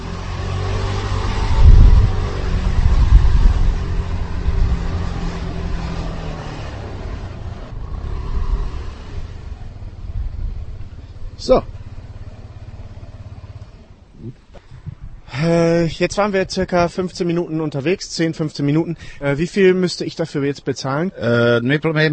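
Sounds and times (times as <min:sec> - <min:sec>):
rough rattling rumble of motorcycle over cobblestones: 0:00.0 - 0:15.3
motorcycle taxi engine droning on cobblestones: 0:00.0 - 0:15.9
speech: 0:11.4 - 0:11.8, 0:15.4 - 0:22.1.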